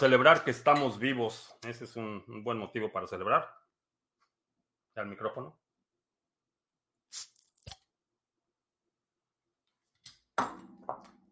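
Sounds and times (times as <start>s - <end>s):
speech: 0.0s - 3.6s, 5.0s - 5.6s, 7.1s - 7.3s
Modelo Especial beer being opened: 7.1s - 7.8s.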